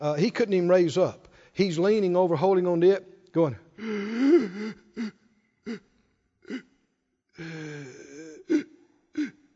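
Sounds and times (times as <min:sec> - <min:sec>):
speech: 0:00.0 - 0:05.9, 0:06.5 - 0:06.7
person imitating labored rasping gasps of a man with lung cancer: 0:03.8 - 0:09.5.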